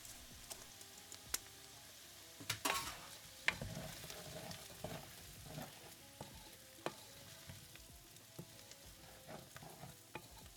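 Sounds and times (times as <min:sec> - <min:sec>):
food sizzling in a pot: 0:00.0 - 0:10.5
spoon scraping and stirring food in a pot: 0:02.5 - 0:10.5.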